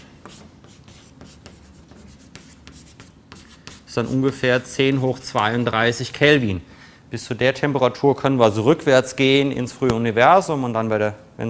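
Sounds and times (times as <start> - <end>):
equation written on a board in scratchy strokes: 0.0 - 5.8
speech: 3.9 - 11.4.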